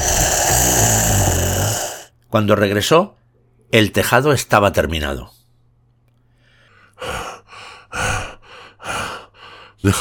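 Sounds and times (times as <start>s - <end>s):
person acting out heavy breathless panting after exertion: 0.0s - 2.1s, 6.6s - 9.8s
speech: 2.3s - 5.4s.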